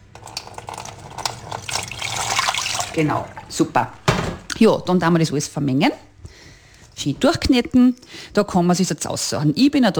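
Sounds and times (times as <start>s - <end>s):
lukewarm water poured over honey in a glass: 0.1s - 3.6s
speech: 3.0s - 4.0s, 4.6s - 6.1s, 7.0s - 9.9s.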